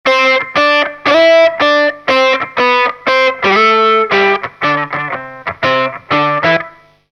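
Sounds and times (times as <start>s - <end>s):
solo guitar octaves through effects pedals: 0.1s - 7.1s.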